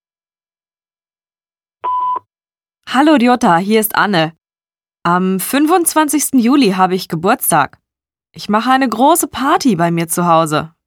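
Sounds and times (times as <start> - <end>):
telephone answering machine beep: 1.8 - 2.3
speech: 2.9 - 4.4, 5.0 - 10.8.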